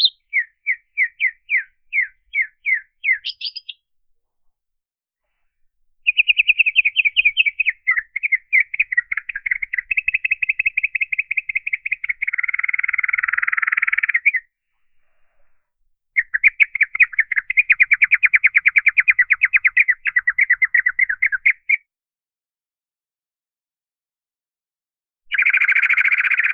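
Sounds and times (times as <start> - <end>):
bird short chirps spaced evenly: 0.0 - 3.9, 6.0 - 14.4, 16.2 - 21.8, 25.3 - 26.5.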